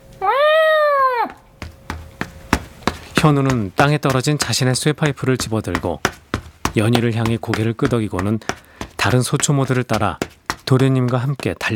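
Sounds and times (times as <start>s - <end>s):
cat meowing loudly: 0.2s - 1.4s
speech: 3.2s - 6.2s, 6.8s - 11.7s.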